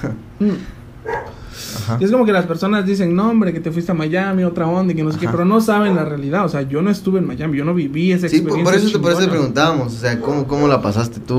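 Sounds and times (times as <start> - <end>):
low hum: 0.0 - 11.3
speech: 0.4 - 11.3
dog barking: 1.0 - 1.4.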